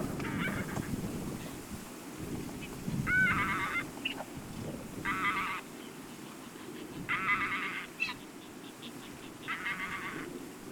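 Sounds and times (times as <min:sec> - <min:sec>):
Anser anser calling in Norfolk UK: 0:00.2 - 0:01.6, 0:02.6 - 0:04.3, 0:05.0 - 0:10.4.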